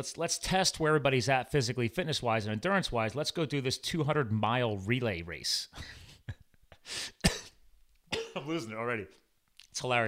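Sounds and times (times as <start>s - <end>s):
speech: 0.0s - 6.0s, 6.9s - 7.2s, 8.4s - 9.2s, 9.8s - 10.0s
person coughing: 7.1s - 8.6s.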